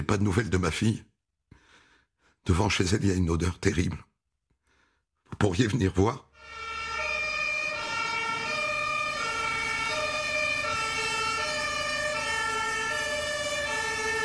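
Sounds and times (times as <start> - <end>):
speech: 0.0 - 1.1, 2.4 - 4.1, 5.3 - 6.3
fire engine two-tone siren wailing: 6.4 - 14.2
low rumble of traffic: 7.2 - 14.2.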